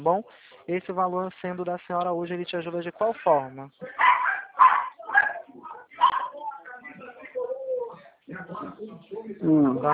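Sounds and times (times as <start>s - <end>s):
speech: 0.0s - 4.7s, 8.3s - 9.9s
female dog barking in loud yaps: 4.0s - 6.4s.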